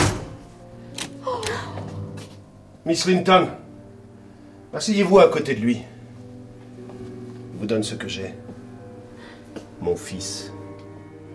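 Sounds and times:
door being closed inside a house: 0.0s - 0.4s
speech: 2.8s - 3.6s, 4.7s - 5.9s, 7.6s - 8.4s, 9.8s - 10.6s.

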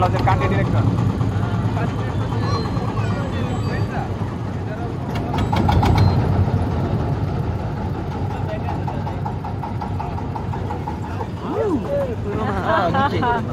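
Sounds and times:
boat engine droning in a tight turn in shallow water: 0.0s - 13.5s
faint voices murmuring: 0.0s - 13.5s
laughter: 10.5s - 13.5s.

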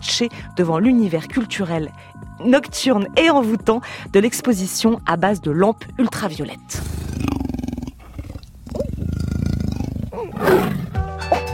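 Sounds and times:
speech: 0.2s - 7.3s
leopard roaring: 6.7s - 11.0s.

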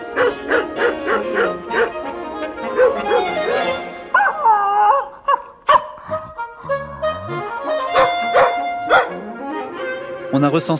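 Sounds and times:
dog barking and howling: 0.0s - 2.0s, 2.7s - 6.3s, 7.9s - 9.3s
speech: 10.4s - 10.7s.

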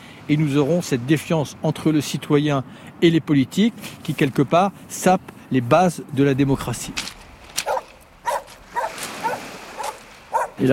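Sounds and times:
speech: 0.3s - 7.2s
dog barking on a beach by a strand line of seaweed: 7.6s - 10.6s.

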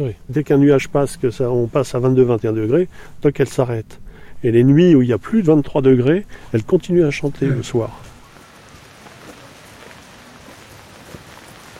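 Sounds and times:
speech: 0.0s - 8.1s
rain falling outdoors: 7.4s - 11.7s.

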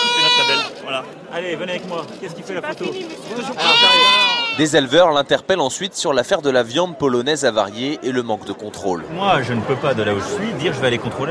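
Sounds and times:
sheep bleating at a livestock show: 0.0s - 0.8s, 3.6s - 4.7s
speech: 1.0s - 11.3s.

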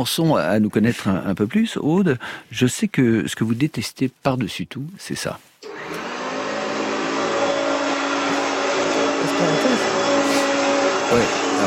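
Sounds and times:
speech: 0.0s - 6.0s
vacuum cleaner running: 5.6s - 11.6s.

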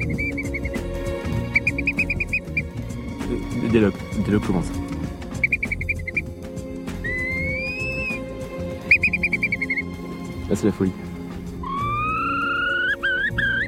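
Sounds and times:
Eurasian curlew calling with rapid piping notes and rising whistle: 0.0s - 4.0s, 4.7s - 13.6s
speech: 3.7s - 4.8s, 10.5s - 11.0s.

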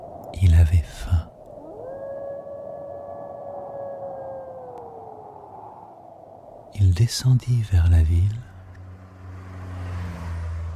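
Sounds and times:
hiss: 0.0s - 8.8s
speech: 0.4s - 1.3s, 6.8s - 8.5s
wolf howling: 1.4s - 6.8s.

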